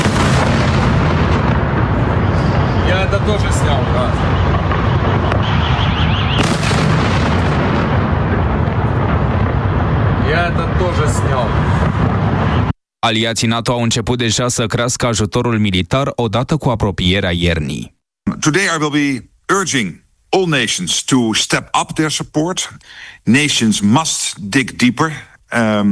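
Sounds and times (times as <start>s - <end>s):
continuous roar: 0.0s - 12.8s
heavy explosions from missile and drone strikes: 0.0s - 12.8s
speech: 3.2s - 4.6s, 13.0s - 25.9s.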